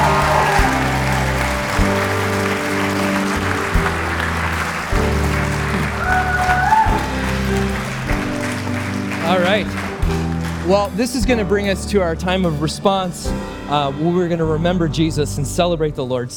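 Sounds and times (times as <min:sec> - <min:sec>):
audience applause: 0:00.0 - 0:11.2
sustained instrumental music chords: 0:00.0 - 0:12.5
speech: 0:10.7 - 0:16.3.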